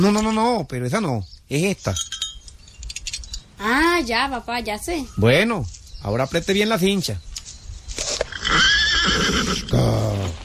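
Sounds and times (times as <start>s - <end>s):
speech: 0.0s - 2.2s, 3.6s - 7.3s
horse neighing shrilly: 8.2s - 10.4s.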